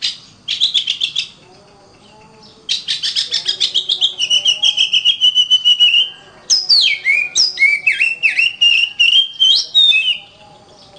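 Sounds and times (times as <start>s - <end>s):
Oriental magpie-robin giving buzzy chattering notes: 0.0s - 10.9s
Oriental magpie-robin singing long and descending whistled phrases: 2.7s - 10.4s.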